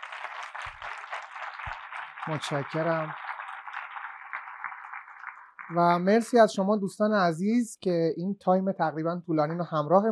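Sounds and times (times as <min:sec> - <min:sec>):
audience applauding at the end of a talk event: 0:00.0 - 0:06.4
speech: 0:02.3 - 0:03.2, 0:05.7 - 0:10.1.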